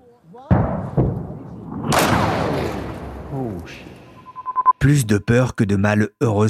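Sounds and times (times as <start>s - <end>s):
artillery shell explosion with sustained rumble: 0.5s - 4.2s
speech: 3.3s - 4.0s, 4.8s - 6.4s.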